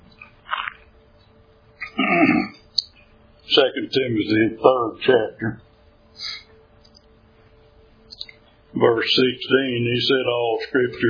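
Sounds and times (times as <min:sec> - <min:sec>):
person clearing throat: 0:01.8 - 0:02.6
speech: 0:03.6 - 0:06.4, 0:08.8 - 0:11.0.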